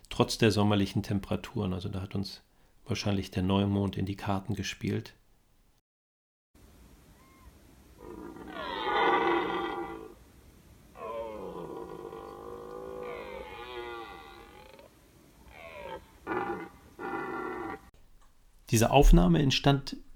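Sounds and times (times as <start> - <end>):
speech: 0.2 - 5.2, 18.7 - 20.1
red deer stag roaring during rut in a woodland copse among fields: 8.0 - 10.2, 11.0 - 17.9.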